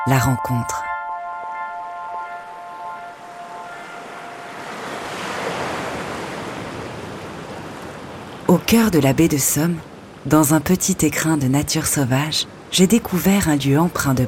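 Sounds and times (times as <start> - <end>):
speech: 0.0 - 0.9, 8.5 - 14.2
faint tonal hums: 0.0 - 5.5
water and waves washing in the Bay of the Somme: 1.3 - 14.2.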